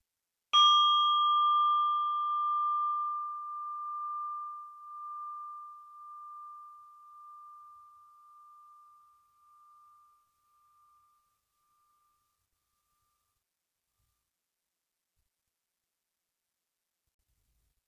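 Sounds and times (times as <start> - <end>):
meditation bell ringing: 0.6 - 13.2.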